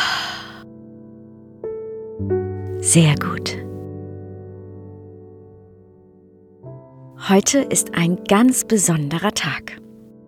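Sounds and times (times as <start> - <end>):
soft airy exhale during a guided breathing exercise: 0.0 - 0.6
speech: 2.2 - 3.7, 7.3 - 9.8.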